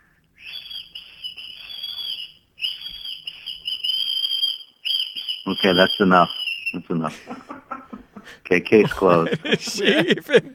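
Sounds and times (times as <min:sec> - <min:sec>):
woman whistling a sustained bird-like note: 0:00.4 - 0:06.8
speech: 0:05.5 - 0:07.5, 0:08.5 - 0:10.5
laughter: 0:06.9 - 0:10.5.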